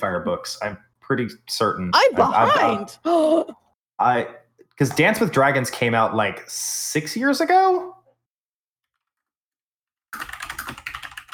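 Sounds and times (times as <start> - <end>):
speech: 0.0 - 7.9
rapid typing on a computer keyboard: 10.2 - 11.3.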